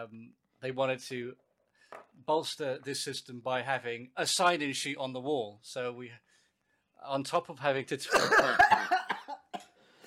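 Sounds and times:
speech: 0.0s - 6.3s, 7.0s - 9.0s
person coughing: 8.1s - 9.7s
person laughing: 8.2s - 9.6s.

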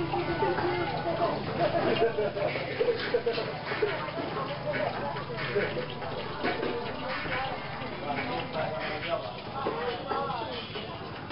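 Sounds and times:
laughter: 0.0s - 7.0s
murmur of voices at a small restaurant: 0.0s - 11.3s.

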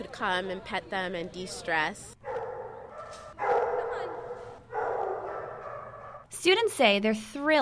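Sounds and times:
speech: 0.0s - 2.2s, 6.4s - 7.5s
dogs barking: 2.2s - 6.3s.

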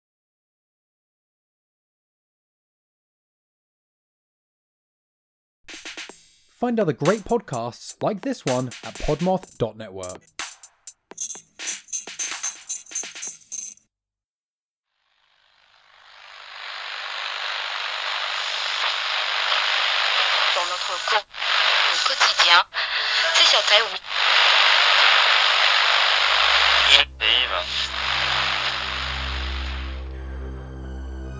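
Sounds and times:
speech: 6.6s - 10.4s
hissing radio static: 15.1s - 30.1s
radio crackle: 15.3s - 30.1s.

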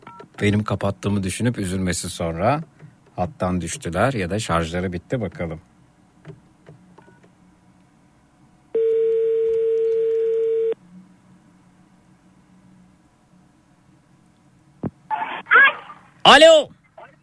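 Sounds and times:
speech: 0.4s - 5.7s, 16.3s - 16.7s
telephone ringback tone: 8.8s - 10.8s.

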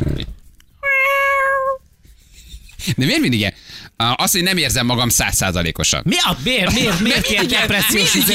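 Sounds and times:
cat in heat meowing: 0.8s - 1.8s
speech: 2.8s - 8.3s
laughter: 6.3s - 8.3s.

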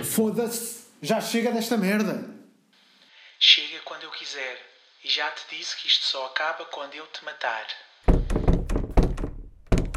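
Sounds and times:
speech: 0.0s - 2.4s, 3.4s - 8.5s
door thudding shut with a heavy impact: 8.1s - 9.9s
loud knocking thumps and rattles: 8.1s - 9.9s.

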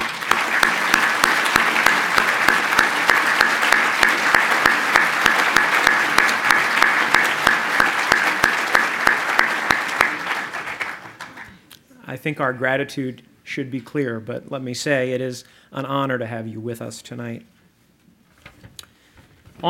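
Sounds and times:
sustained applause from a sizable lecture audience for World War II veterans: 0.0s - 11.6s
speech: 12.2s - 17.6s.

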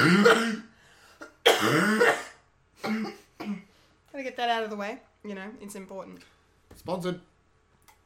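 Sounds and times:
person clearing throat: 0.0s - 3.7s
person coughing: 0.0s - 3.7s
speech: 4.4s - 7.3s.

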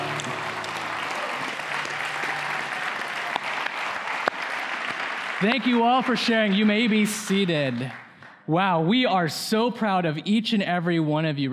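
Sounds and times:
large crowd applauding: 0.0s - 8.4s
speech: 5.4s - 11.5s.

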